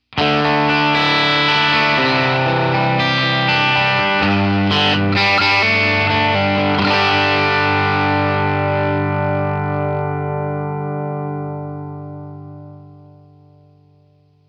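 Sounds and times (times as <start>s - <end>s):
rock guitars: 0.0s - 13.6s.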